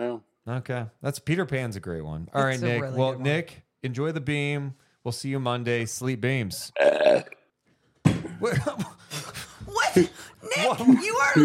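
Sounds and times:
speech: 0.0 - 7.4, 8.4 - 8.9, 10.0 - 11.4
young child burping: 6.8 - 7.5.

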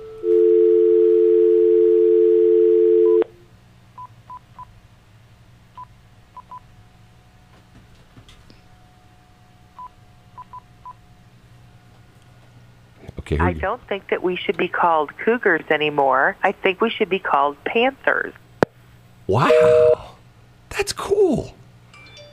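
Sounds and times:
telephone dial tone: 0.2 - 3.3
speech: 13.4 - 18.4, 19.3 - 19.9, 20.8 - 21.5.

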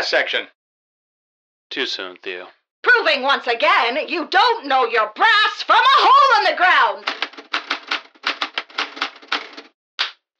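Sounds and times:
speech: 0.0 - 0.6, 1.7 - 7.2
mechanical typewriter keystrokes: 7.0 - 9.7.

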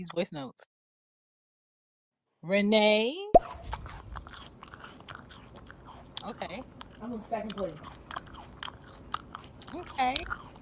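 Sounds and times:
speech: 0.0 - 0.7, 2.4 - 3.8, 6.2 - 8.0, 9.7 - 10.6
person chewing food with crunchy bites: 3.4 - 10.6.

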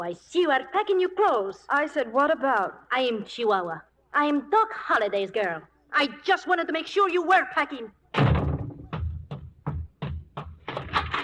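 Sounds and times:
speech: 0.0 - 8.3
heavy door slams: 8.2 - 9.2
banging and commotion: 8.2 - 11.2.

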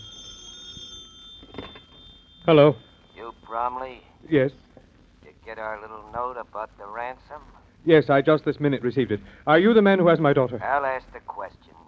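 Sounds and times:
telephone bell ringing with a metallic tone: 0.0 - 4.1
speech: 2.4 - 2.9, 3.5 - 4.6, 5.5 - 11.6.

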